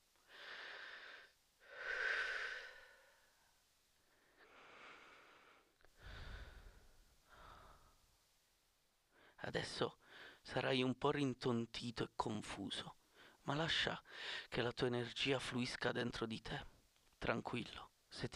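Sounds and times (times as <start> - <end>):
slow deep breathing: 0.2 - 8.1, 10.0 - 10.4
speech: 9.4 - 18.3.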